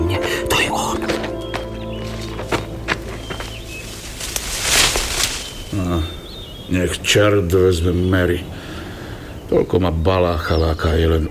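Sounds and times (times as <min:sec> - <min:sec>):
slow uneven footsteps on a hard road: 0:00.0 - 0:05.6
speech: 0:06.7 - 0:08.6, 0:09.5 - 0:11.2.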